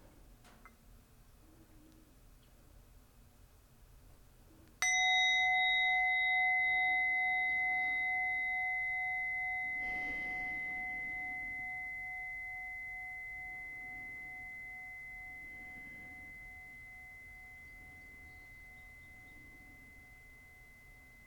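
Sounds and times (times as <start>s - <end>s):
meditation bell ringing: 4.8s - 21.2s.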